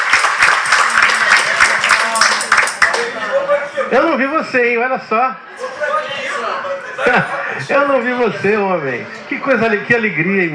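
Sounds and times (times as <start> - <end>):
crowd applauding: 0.0 - 3.2
speech: 3.9 - 6.2, 7.0 - 10.5
laughter: 5.6 - 8.2.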